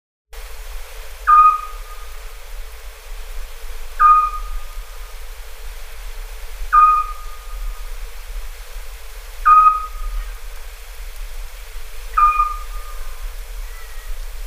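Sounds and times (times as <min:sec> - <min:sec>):
quiet hiss: 0:00.4 - 0:14.4
Eurasian scops owl giving short clear whistled notes: 0:01.3 - 0:02.0, 0:04.0 - 0:04.6, 0:06.7 - 0:07.6, 0:09.4 - 0:10.4, 0:12.1 - 0:14.2.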